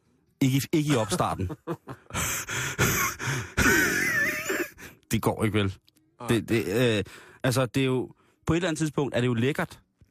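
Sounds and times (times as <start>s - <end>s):
speech: 0.4s - 2.9s, 5.1s - 9.8s
laughter: 0.9s - 4.8s
heavy breathing right up against the microphone: 1.9s - 3.8s, 7.0s - 7.4s
voiced gasps and grunts: 2.0s - 5.0s.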